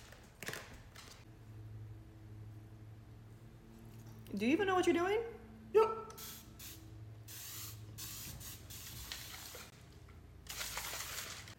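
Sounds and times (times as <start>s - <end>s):
speech: 4.3s - 6.3s
water spray bottle misting a woman's hair: 6.2s - 9.7s.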